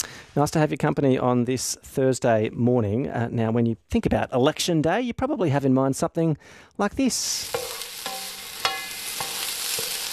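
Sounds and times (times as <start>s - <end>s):
speech: 0.4s - 7.8s
sausages sizzling on a hot barbecue plate: 7.2s - 10.1s
metal tongs tapping and scraping on a barbecue plate: 7.5s - 10.1s.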